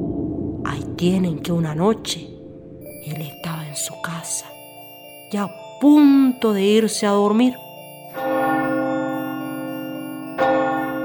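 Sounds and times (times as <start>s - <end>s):
speech: 0.6s - 2.3s, 3.0s - 4.6s, 5.3s - 8.4s
clock bell striking the hour: 2.8s - 11.0s.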